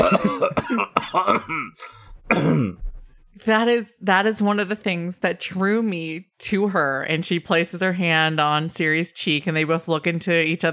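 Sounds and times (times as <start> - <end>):
person coughing and choking on a drink: 0.0 - 2.8
speech: 0.8 - 10.7.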